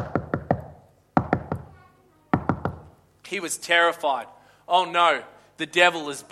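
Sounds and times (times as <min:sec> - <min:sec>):
firm knocking on a door: 0:00.0 - 0:02.9
speech: 0:03.3 - 0:06.3.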